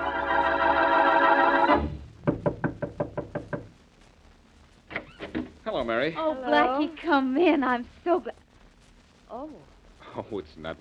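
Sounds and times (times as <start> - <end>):
sustained musical tone: 0.0 - 2.0
man knocking on a door: 1.8 - 3.8
speech: 5.8 - 8.4, 9.4 - 10.7.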